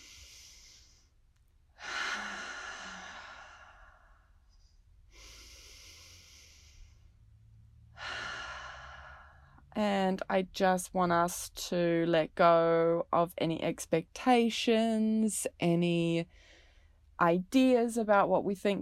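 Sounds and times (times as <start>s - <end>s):
slow deep belly breaths in through the nose and out through the mouth: 0.0s - 9.7s
speech: 9.8s - 16.5s, 17.2s - 18.8s.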